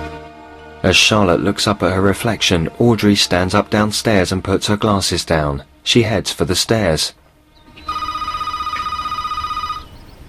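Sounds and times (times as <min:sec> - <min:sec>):
speech: 0:00.9 - 0:07.2
telephone in a hallway ringing with a bright warbling trill: 0:07.7 - 0:10.2.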